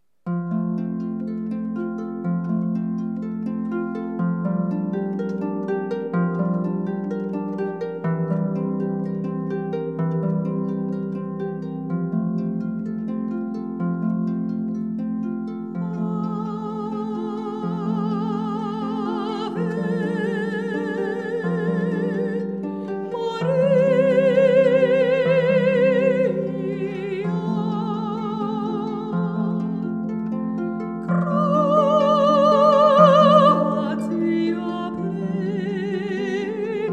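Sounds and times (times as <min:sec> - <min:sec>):
harp playing: 0:00.3 - 0:36.9
voice: 0:15.9 - 0:29.6, 0:31.2 - 0:36.9.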